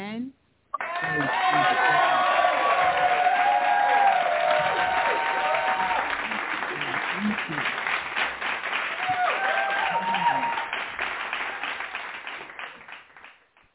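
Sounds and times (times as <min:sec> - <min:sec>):
audience cheering and whoops: 0:00.8 - 0:06.5, 0:08.9 - 0:10.8
audience applause: 0:00.8 - 0:13.6.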